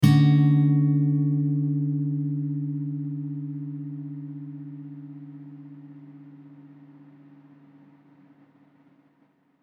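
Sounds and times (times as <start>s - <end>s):
mellow acoustic guitar in A: 0.0s - 9.1s.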